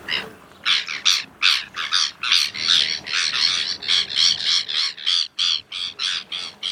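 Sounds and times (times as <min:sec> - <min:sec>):
migratory black-hooded bird giving harsh raucous squawking calls: 0:00.1 - 0:06.6.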